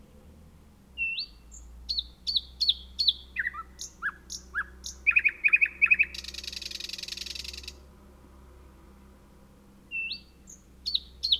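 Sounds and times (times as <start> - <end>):
thrush nightingale singing clicks, slurred whistles and buzzy rattles: 1.0 - 7.8, 9.9 - 11.3.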